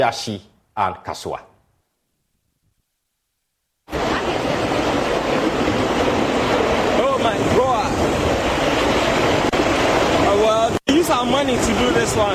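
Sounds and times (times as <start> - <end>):
speech: 0.0 - 1.5, 11.0 - 12.3
heavy rain at Tantra Hill, Shiashie or Kasoa: 3.9 - 12.3
rushing floodwater at Tantra Hill, Shiashie or Kasoa: 3.9 - 12.3.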